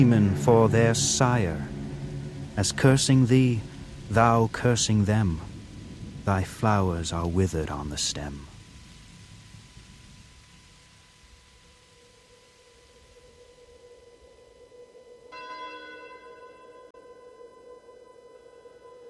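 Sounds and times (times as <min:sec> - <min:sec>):
speech: 0:00.0 - 0:01.8, 0:02.6 - 0:05.5, 0:06.3 - 0:08.5
low rumble of thunder: 0:00.0 - 0:11.6
steady rain hissing: 0:00.0 - 0:14.6
sustained ringing tone: 0:14.6 - 0:19.0.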